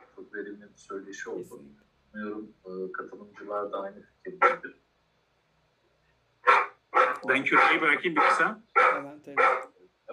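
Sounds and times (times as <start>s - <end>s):
speech: 0.3s - 4.8s, 7.2s - 9.6s
dog barking: 4.4s - 4.7s, 6.4s - 9.7s.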